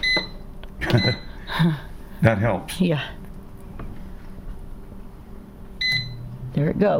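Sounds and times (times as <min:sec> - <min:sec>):
appliance control panel short electronic beeps: 0:00.0 - 0:00.4, 0:01.0 - 0:01.3, 0:05.8 - 0:06.2
speech: 0:00.9 - 0:03.2, 0:06.6 - 0:06.9.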